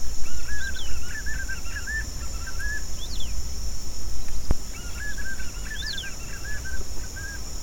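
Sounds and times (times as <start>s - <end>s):
Nystalus chacuru João bobo call: 0.2s - 3.4s, 4.7s - 7.5s.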